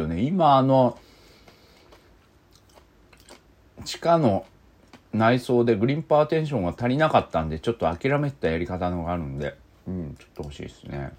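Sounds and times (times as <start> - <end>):
speech: 0.0 - 1.0, 3.8 - 4.5, 5.1 - 11.1
crisp chewing of takana pickled mustard greens: 1.0 - 3.5.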